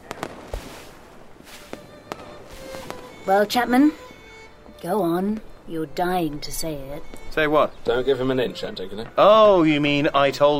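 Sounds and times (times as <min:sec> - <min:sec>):
fireworks banging and crackling: 0:00.0 - 0:04.1
steady hiss of noise: 0:00.0 - 0:10.5
speech: 0:03.2 - 0:04.0, 0:04.8 - 0:10.5.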